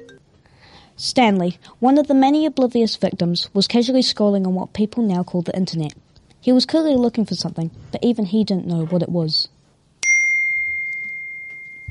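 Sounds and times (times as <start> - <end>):
phone notification ding: 0.0 - 0.2, 10.0 - 11.8
speech: 1.0 - 9.5.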